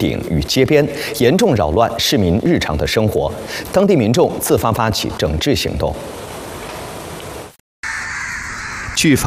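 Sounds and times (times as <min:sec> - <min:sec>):
speech: 0:00.0 - 0:06.3, 0:09.0 - 0:09.2
large flock of crows cawing in Aden Yemen: 0:07.8 - 0:09.2.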